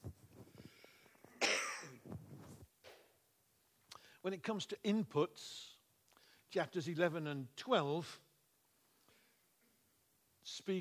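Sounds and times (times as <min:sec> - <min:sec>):
rustling: 0:00.0 - 0:02.9
throaty breaths: 0:00.4 - 0:01.4
person coughing: 0:01.4 - 0:02.0
speech: 0:04.2 - 0:05.7, 0:06.5 - 0:08.2.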